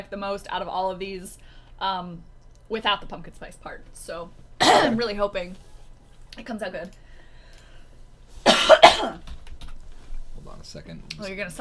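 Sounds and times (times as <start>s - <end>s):
speech: 0.0s - 5.7s, 6.4s - 7.0s, 8.9s - 9.3s, 10.4s - 11.6s
harsh coughs: 4.6s - 5.0s, 8.5s - 9.2s.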